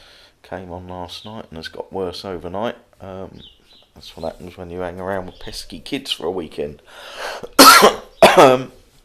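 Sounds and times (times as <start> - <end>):
speech: 0.5 - 8.8
person with a chronic cold coughing: 7.4 - 8.7.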